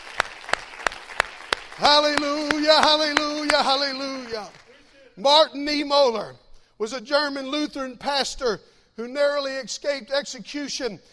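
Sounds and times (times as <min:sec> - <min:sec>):
audience clapping hands in unison: 0:00.0 - 0:05.0
speech: 0:01.8 - 0:04.6, 0:05.2 - 0:11.1.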